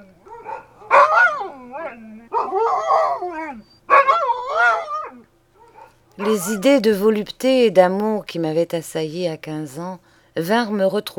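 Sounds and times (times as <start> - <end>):
dogs barking with high yelping calls: 0.0 - 6.8
speech: 6.2 - 11.1.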